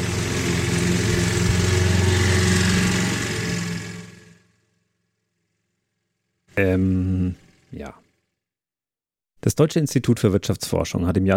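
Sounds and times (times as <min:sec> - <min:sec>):
neighbour's lawn mower droning with a rough buzzing engine note: 0:00.0 - 0:08.2
speech: 0:06.6 - 0:08.0, 0:09.4 - 0:11.3.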